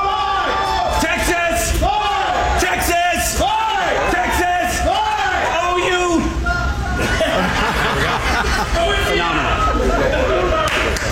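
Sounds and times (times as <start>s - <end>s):
large crowd at the Texas state fair shouting in unison: 0.0s - 6.9s
people laughing: 6.3s - 11.0s.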